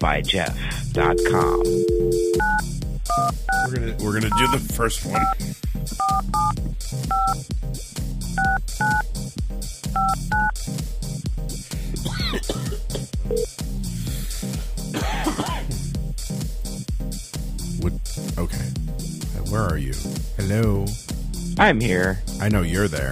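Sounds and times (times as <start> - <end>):
speech: 0.0 - 9.2, 19.6 - 21.0, 21.6 - 23.0
loud steady rhythmic backing: 0.5 - 23.0
telephone keypad dialing tones: 1.0 - 3.7, 7.1 - 7.4, 8.4 - 9.0.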